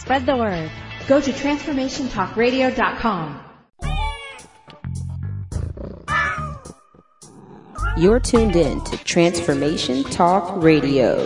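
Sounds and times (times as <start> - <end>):
speech: 0.1 - 3.5, 8.0 - 11.2
cat meowing and yowling: 5.9 - 10.1.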